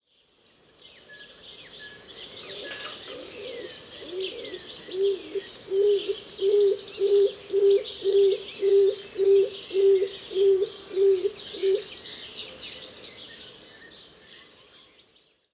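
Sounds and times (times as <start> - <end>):
stock dove Columba oenas calling: 2.5 - 11.9.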